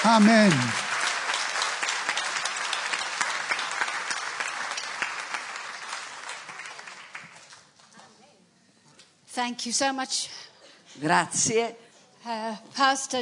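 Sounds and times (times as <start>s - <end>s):
speech: 0.0s - 0.8s, 9.4s - 13.2s
congregation applauding: 0.0s - 7.7s.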